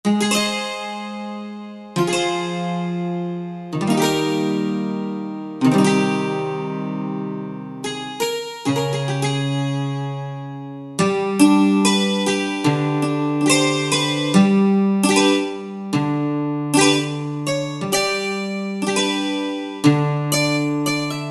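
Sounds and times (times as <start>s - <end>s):
bouzouki playing: 0.0s - 21.2s.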